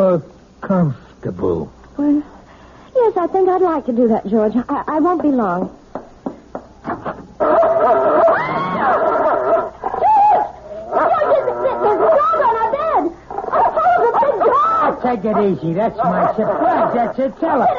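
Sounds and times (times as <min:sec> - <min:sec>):
speech: 0:00.0 - 0:02.4, 0:03.0 - 0:05.8, 0:15.0 - 0:17.7
dog yelping, whining and whimpering: 0:07.4 - 0:17.7.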